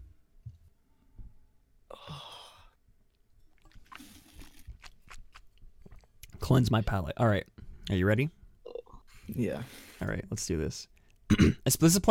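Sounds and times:
liquid sloshing: 3.4 - 6.3
slurp of water sipped from a glass: 3.4 - 6.4
person swallowing: 3.5 - 6.3, 8.6 - 9.0
speech: 6.5 - 8.4, 9.3 - 12.0.

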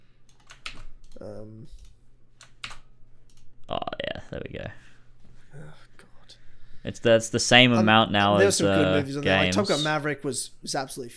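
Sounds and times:
computer keyboard typing to copy and paste text: 0.3 - 1.2, 1.8 - 3.4
speech: 1.2 - 1.9, 3.7 - 4.9, 6.8 - 11.1.

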